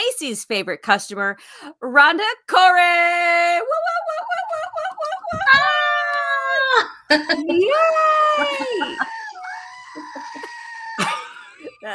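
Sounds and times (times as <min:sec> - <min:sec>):
speech: 0:00.2 - 0:04.2, 0:06.8 - 0:09.2
laughter: 0:03.5 - 0:11.9
goat screaming: 0:05.3 - 0:11.4.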